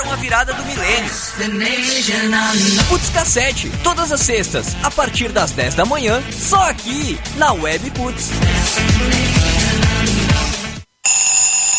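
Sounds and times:
upbeat music: 0:00.0 - 0:10.9
speech: 0:00.1 - 0:09.4
alarm clock ringing with piercing high tones: 0:11.0 - 0:11.7.

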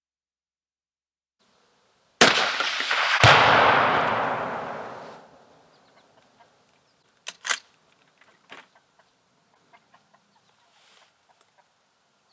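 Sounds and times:
distant explosion of shot target: 0:02.2 - 0:05.6
gunshot crack: 0:02.2 - 0:05.6.

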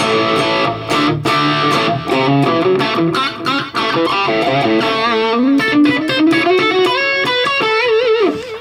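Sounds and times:
crunchy mildly overdriven electric guitar through a Marshall JMP amp: 0:00.0 - 0:08.5.

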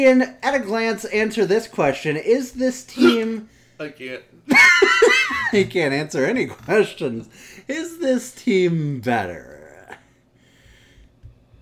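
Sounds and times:
speech: 0:00.0 - 0:09.5
person clearing throat: 0:03.0 - 0:03.4
laughter: 0:04.5 - 0:05.8.

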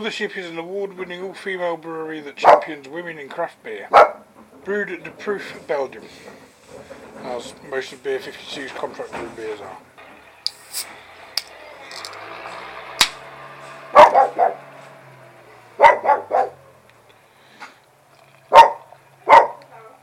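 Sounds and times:
speech: 0:00.0 - 0:06.5, 0:07.2 - 0:09.9, 0:10.7 - 0:11.0
dog barking: 0:02.4 - 0:02.7, 0:03.9 - 0:04.2, 0:13.9 - 0:14.7, 0:15.8 - 0:16.6, 0:18.5 - 0:19.7.

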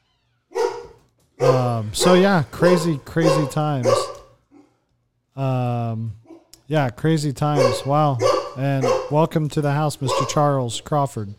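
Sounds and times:
dog barking at doorbell visitor: 0:00.5 - 0:04.8, 0:07.5 - 0:09.2, 0:10.0 - 0:10.5
speech: 0:01.4 - 0:04.1, 0:05.4 - 0:11.3.

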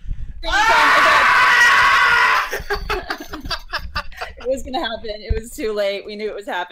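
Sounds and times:
cartoon character screaming: 0:00.5 - 0:02.6
laughter: 0:02.2 - 0:04.6
speech: 0:04.6 - 0:06.7.

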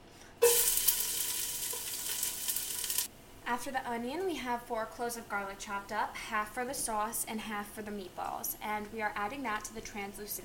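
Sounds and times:
chopped garlic sizzling with onions in hot olive oil: 0:00.4 - 0:03.1
speech: 0:03.5 - 0:10.4.

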